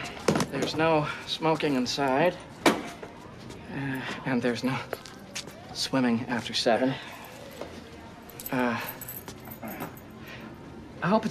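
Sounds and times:
faint voices: 0:00.0 - 0:11.2
speech: 0:00.7 - 0:02.5, 0:03.7 - 0:05.0, 0:05.8 - 0:07.1, 0:08.5 - 0:09.0, 0:11.0 - 0:11.2
keys jingling in the lock of a flat door: 0:08.3 - 0:10.2.

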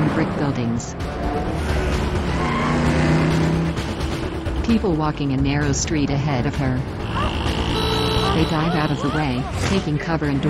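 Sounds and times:
car engine roaring at high speed: 0:00.0 - 0:10.4
speech: 0:00.2 - 0:01.3, 0:04.7 - 0:07.5, 0:08.4 - 0:10.4
tire squeal: 0:01.3 - 0:03.3, 0:07.0 - 0:09.6.

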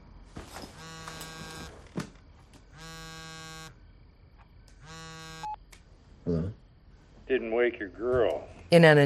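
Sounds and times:
phone ringing with buzzy electronic rings: 0:00.8 - 0:01.8, 0:02.7 - 0:03.8, 0:04.8 - 0:05.6
speech: 0:07.3 - 0:09.0.

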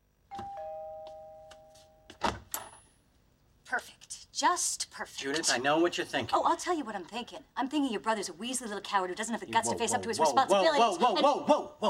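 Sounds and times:
doorbell ringing with a two-note chime: 0:00.3 - 0:02.2
speech: 0:03.8 - 0:11.8.

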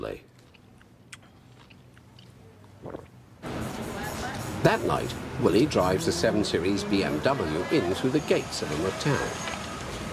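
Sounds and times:
speech: 0:00.0 - 0:00.3, 0:04.6 - 0:09.5
person munching on a juicy orange: 0:00.3 - 0:03.2.

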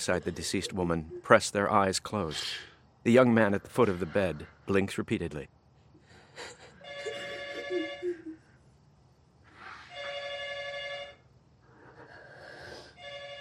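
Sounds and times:
speech: 0:00.0 - 0:05.6, 0:06.4 - 0:06.6
faint hum: 0:00.0 - 0:13.3
home telephone ringing with electronic trills: 0:06.9 - 0:08.2.

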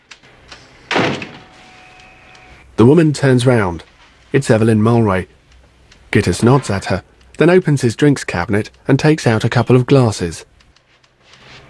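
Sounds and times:
inner office door swinging shut with a thud: 0:00.9 - 0:01.5
speech: 0:02.8 - 0:05.4, 0:06.1 - 0:10.5.

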